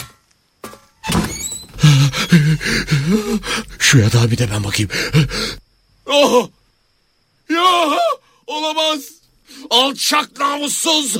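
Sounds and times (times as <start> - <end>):
cabin door creaking as it swings: 0.0 - 3.8
speech: 2.3 - 6.6, 7.5 - 11.1.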